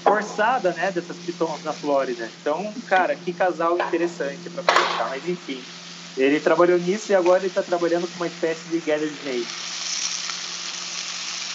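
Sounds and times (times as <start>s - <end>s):
chicken frying in a hot pan: 0.0s - 11.5s
speech: 0.2s - 9.7s.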